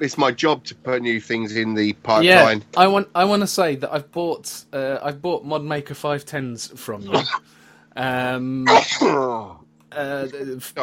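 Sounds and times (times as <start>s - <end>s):
speech: 0.0s - 10.8s
person sneezing: 7.1s - 7.4s, 8.6s - 9.5s.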